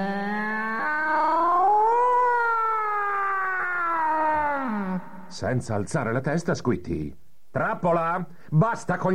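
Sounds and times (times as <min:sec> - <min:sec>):
cat meowing in a long drawn-out yowl: 0:00.2 - 0:05.3
speech: 0:05.3 - 0:09.1.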